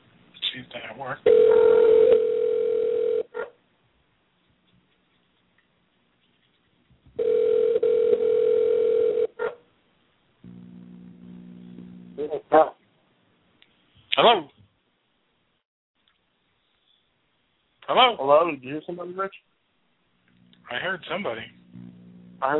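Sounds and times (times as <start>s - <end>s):
speech: 0.6s - 2.3s, 18.2s - 19.5s, 20.7s - 21.6s, 22.4s - 22.5s
telephone ringback tone while calling a backup number: 1.3s - 3.3s, 7.2s - 9.3s
low telephone buzzing tone: 10.4s - 12.3s, 20.3s - 22.5s.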